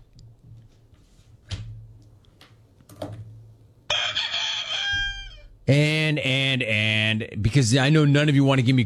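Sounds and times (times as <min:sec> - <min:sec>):
rooster crowing: 0:03.9 - 0:05.6
speech: 0:05.7 - 0:08.8.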